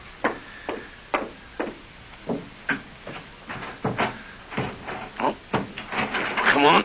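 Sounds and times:
stuck porch door rattled and jerked, wooden knocks and clatters: 1.2 - 6.8
person's voice: 6.4 - 6.8.

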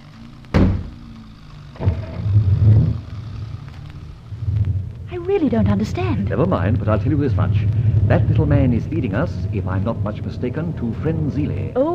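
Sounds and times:
car engine rumbling and revving as the car pulls away: 0.0 - 11.9
car doors slamming shut: 0.5 - 1.0, 1.8 - 2.4
speech: 5.3 - 11.9.

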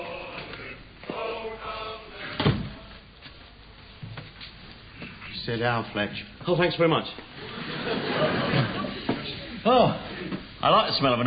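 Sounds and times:
door pushed shut with a thud: 2.4 - 2.8
speech: 5.5 - 7.3, 9.6 - 11.2
laughter: 7.4 - 10.3.

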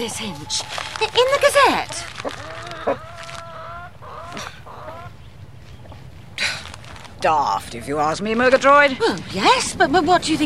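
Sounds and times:
speech: 0.0 - 3.0, 7.2 - 10.4
chickens clucking and squawking in a hen house: 0.0 - 6.1, 7.6 - 8.3.

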